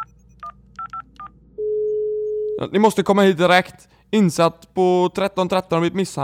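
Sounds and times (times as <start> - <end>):
steady continuous telephone line tone: 0.0 - 2.6
speech: 2.6 - 6.2.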